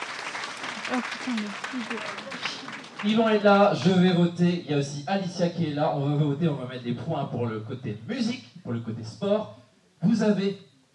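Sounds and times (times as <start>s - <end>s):
studio audience applause: 0.0s - 3.9s
speech: 0.9s - 10.7s.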